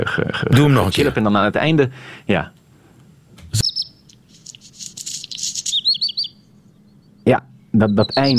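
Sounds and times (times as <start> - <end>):
speech: 0.4 - 2.6, 7.3 - 8.3
redstart singing a bright phrase ending in grinding notes: 3.6 - 8.3.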